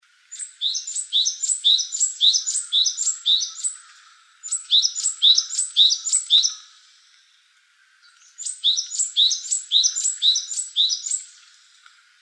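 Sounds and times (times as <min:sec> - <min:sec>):
Japanese tit giving rapid two-note chirps: 0:00.3 - 0:06.6, 0:08.0 - 0:11.3.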